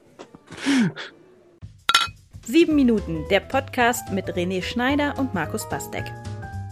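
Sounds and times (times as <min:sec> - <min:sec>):
speech: 0:00.8 - 0:01.2, 0:02.5 - 0:06.2
glasses clinking in a toast: 0:01.9 - 0:02.1.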